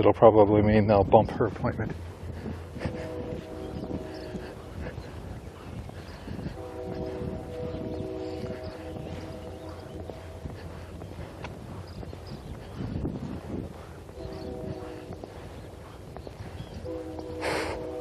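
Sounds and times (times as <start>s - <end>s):
speech: 0.0s - 2.1s
steady low train engine rumble: 0.0s - 17.9s
distant train whistle: 2.4s - 5.1s, 6.0s - 10.9s, 14.1s - 15.6s, 16.7s - 17.9s.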